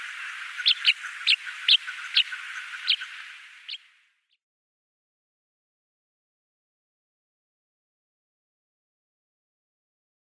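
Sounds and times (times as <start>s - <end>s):
Tawny pipit flight calls: 0.0s - 4.0s
background hiss: 0.0s - 4.3s.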